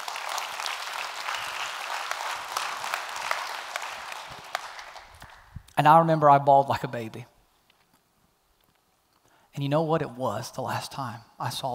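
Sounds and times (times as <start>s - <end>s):
audience applause: 0.0s - 5.5s
speech: 5.8s - 7.3s, 9.6s - 11.7s.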